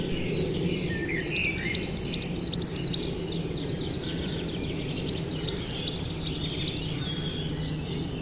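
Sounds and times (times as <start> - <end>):
coal tit singing high thin two-note phrases: 0.0 - 8.1.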